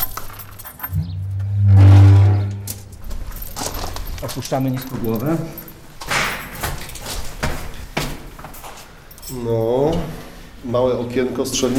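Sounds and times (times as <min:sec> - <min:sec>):
original armored bunker door weighing nearly half a ton clanking: 0:00.9 - 0:03.4
speech: 0:04.2 - 0:05.6, 0:09.3 - 0:11.7.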